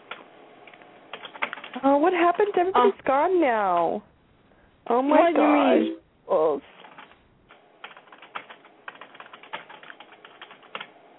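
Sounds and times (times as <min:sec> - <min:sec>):
rapid typing on a computer keyboard: 0:01.1 - 0:01.8, 0:06.7 - 0:10.9
speech: 0:01.8 - 0:04.1, 0:04.9 - 0:06.7.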